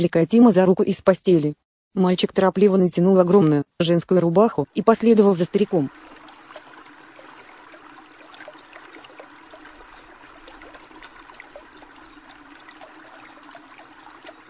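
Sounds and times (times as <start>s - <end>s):
speech: 0.0s - 6.2s
mountain spring water trickling over stones: 4.9s - 14.4s.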